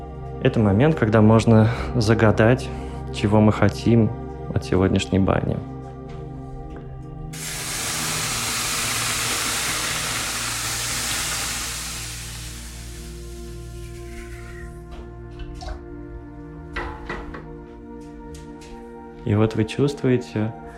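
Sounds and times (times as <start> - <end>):
speech: 0.4 - 5.8, 19.4 - 20.7
crackles and drips: 7.4 - 14.5
water poured on hot sauna stones hissing in banya stove: 7.4 - 14.6.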